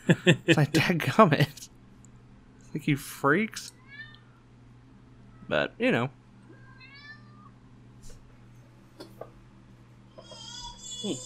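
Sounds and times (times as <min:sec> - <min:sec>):
laughter: 0:00.0 - 0:01.6
steady low electrical hum: 0:00.0 - 0:11.2
speech: 0:00.1 - 0:01.8, 0:02.8 - 0:03.8, 0:05.5 - 0:06.2, 0:11.0 - 0:11.2
cat meowing loudly: 0:06.5 - 0:07.5.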